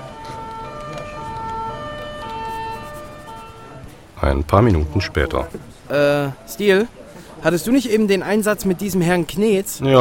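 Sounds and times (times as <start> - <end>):
police car siren wailing with alternating tones: 0.0 - 3.9
low rumble of traffic and road noise: 0.0 - 7.4
speech: 4.2 - 9.9.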